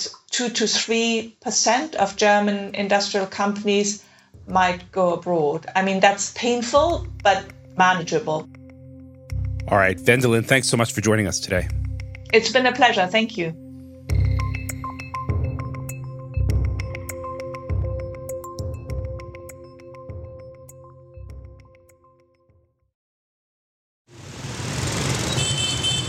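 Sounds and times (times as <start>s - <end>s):
speech: 0.0s - 8.5s, 9.7s - 14.2s
musical passage with steady tones and regular beats: 6.8s - 7.8s, 8.5s - 12.6s, 13.6s - 21.9s
street traffic of motorbikes and SUVs in Hanoi: 24.1s - 26.0s.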